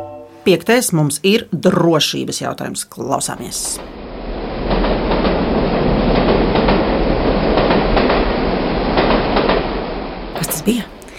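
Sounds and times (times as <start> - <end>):
speech: 0.5 - 4.0, 10.6 - 10.9
train rumble: 3.5 - 11.1
train wheels clattering on rails: 4.5 - 10.0.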